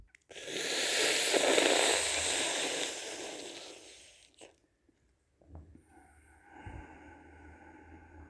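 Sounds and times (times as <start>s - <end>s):
slurping hissing inhale through the mouth in a cooling breathing exercise: 0.3s - 4.6s.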